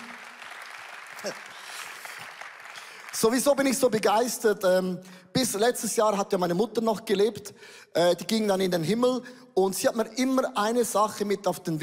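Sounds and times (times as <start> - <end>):
audience applauding: 0.0 - 4.0
speech: 1.2 - 1.5, 3.2 - 11.8.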